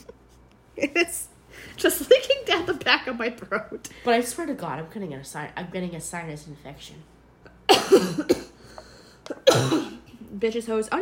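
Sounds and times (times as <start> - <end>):
speech: 0.8 - 7.2, 7.9 - 8.5, 10.4 - 11.0
person coughing with a lingering illness cough: 7.7 - 8.7, 9.3 - 10.1.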